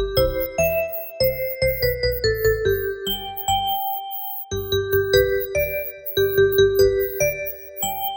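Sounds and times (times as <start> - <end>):
smartphone ringtone: 0.2 - 8.1.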